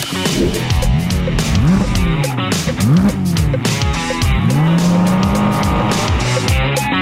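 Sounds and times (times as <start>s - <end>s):
Porsche 718 Cayman GT4 RS engine revving while accelerating hard on a race track: 0.0s - 6.9s.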